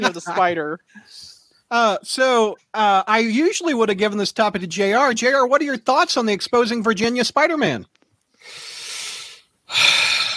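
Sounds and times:
speech: 0.0s - 8.7s
deep breath: 8.4s - 10.3s.

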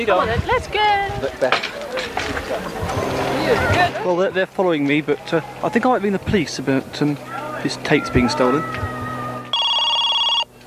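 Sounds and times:
speech: 0.0s - 8.9s
telephone ringing with rapid electronic trilling: 9.5s - 10.5s.

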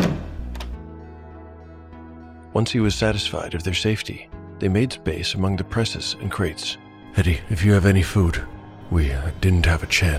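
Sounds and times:
wooden cidery door swinging shut: 0.0s - 0.8s
speech: 2.6s - 10.1s.

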